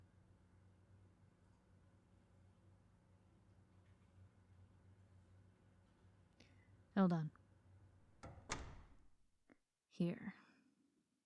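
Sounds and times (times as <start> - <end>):
speech: 7.0 - 7.4, 10.0 - 10.4
door being pushed shut: 8.2 - 9.2.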